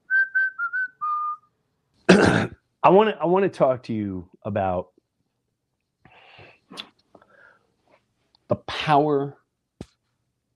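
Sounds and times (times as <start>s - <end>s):
person whistling a short bright tune: 0.0s - 1.4s
speech: 2.2s - 4.9s, 8.9s - 9.4s.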